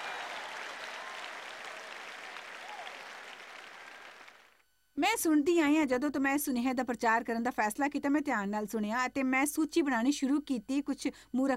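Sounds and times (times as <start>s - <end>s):
audience clapping: 0.0s - 4.6s
speech: 5.0s - 11.5s.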